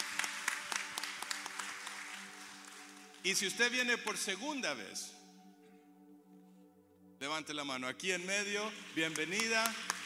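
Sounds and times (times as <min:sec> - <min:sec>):
audience applauding a church visitor: 0:00.0 - 0:03.5, 0:08.8 - 0:10.0
speech: 0:03.2 - 0:05.2, 0:07.4 - 0:09.9.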